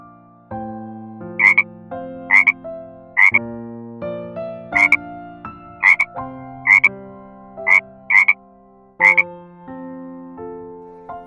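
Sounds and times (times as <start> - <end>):
frog croaking: 1.4 - 1.7, 2.3 - 2.6, 3.2 - 3.4, 4.8 - 5.0, 5.8 - 6.9, 7.6 - 8.4, 9.0 - 9.3.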